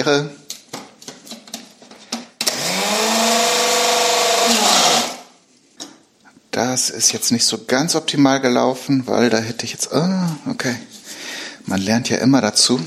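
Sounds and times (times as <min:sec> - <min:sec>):
speech: 0:00.0 - 0:00.4, 0:06.6 - 0:11.0, 0:11.6 - 0:12.8
small kitchen blender chopping: 0:02.4 - 0:05.4.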